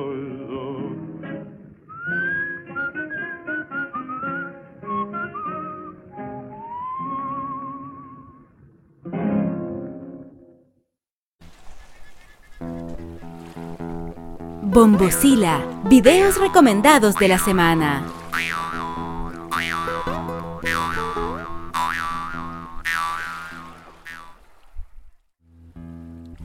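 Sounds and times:
music: 0.0 - 10.8, 12.8 - 18.1, 19.0 - 21.6, 25.5 - 26.4
person whistling a melody with sliding wavering notes: 1.9 - 8.2
speech: 14.8 - 18.6.

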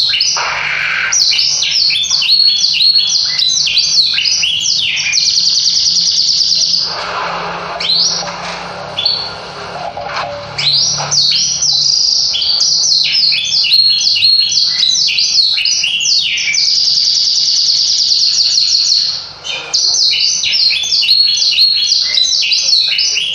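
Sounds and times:
Yorkshire canary singing: 0.0 - 23.3
low steady hum: 6.9 - 12.0.

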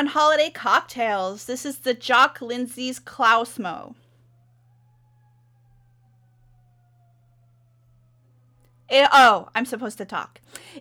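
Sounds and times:
speech: 0.0 - 4.0, 8.9 - 10.7
constant low electrical hum: 0.0 - 10.7
emergency siren wailing: 3.6 - 9.3.

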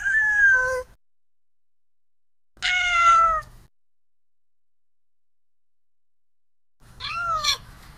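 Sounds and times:
cat meowing: 0.0 - 0.9, 2.6 - 3.5, 7.0 - 7.7.

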